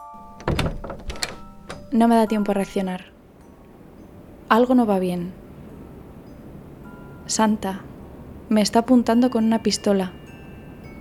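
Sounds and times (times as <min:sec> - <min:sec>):
heavy front door opening thunk: 0:00.2 - 0:02.7
front door latch and handle knocks: 0:00.2 - 0:02.8
speech: 0:01.9 - 0:03.1, 0:04.5 - 0:05.4, 0:07.3 - 0:07.9, 0:08.5 - 0:10.2.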